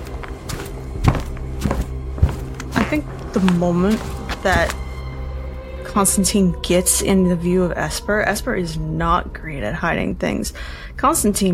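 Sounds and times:
heavy footsteps crossing a room in a house toward a staircase: 0.0s - 5.4s
speech: 2.9s - 4.8s, 6.0s - 11.5s.

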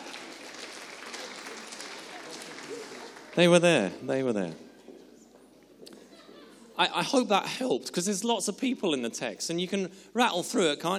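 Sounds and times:
audience applauding: 0.0s - 4.0s
speech: 3.4s - 4.6s, 6.8s - 10.9s.

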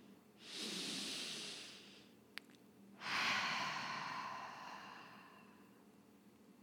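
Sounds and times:
slow deep breath close to the mic: 0.4s - 2.2s, 3.0s - 5.9s.

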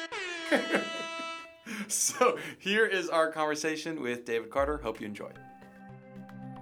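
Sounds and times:
air horn blaring: 0.0s - 1.6s
speech: 0.5s - 5.5s.

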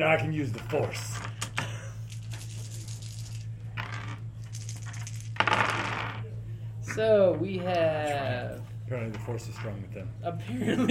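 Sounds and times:
speech: 0.0s - 1.4s, 7.0s - 10.9s
low electrical hum: 0.0s - 10.9s
dice clattering on a table: 2.1s - 6.2s.

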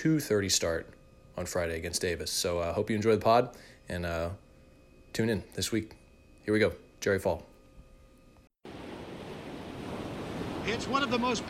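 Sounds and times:
speech: 0.0s - 4.4s, 5.2s - 7.5s, 10.6s - 11.4s
quiet hum: 0.0s - 11.4s
Pacific Ocean waves crashing against the shore: 8.7s - 11.4s.

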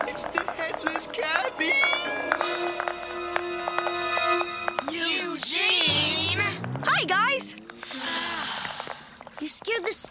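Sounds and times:
wooden clogs clomping on cobblestones in clog dancing practice: 0.0s - 10.0s
steady humming musical tone: 5.8s - 7.8s.

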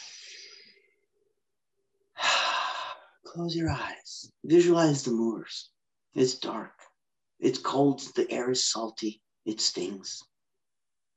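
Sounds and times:
deep breaths in through the nose and out through the mouth during a guided visualization: 0.0s - 0.8s, 2.2s - 3.3s
speech: 3.4s - 6.8s, 7.4s - 10.3s.

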